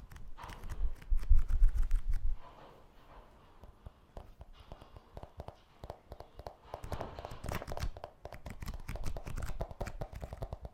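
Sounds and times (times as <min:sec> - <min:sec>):
scissors cutting paper and plastic: 0:00.0 - 0:02.4, 0:06.8 - 0:10.4.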